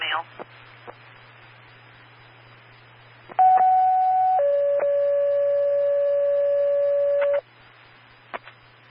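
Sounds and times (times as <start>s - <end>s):
faint radio hiss: 0.0s - 3.2s
speech: 0.2s - 0.5s
two-tone radio pager alert for fire dispatch: 3.4s - 7.4s.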